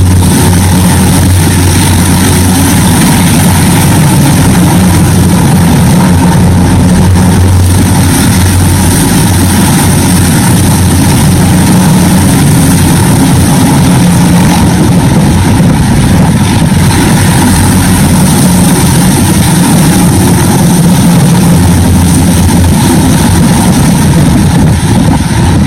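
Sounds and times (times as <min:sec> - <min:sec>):
military helicopters flying low down a street during military drills: 0:00.0 - 0:25.6.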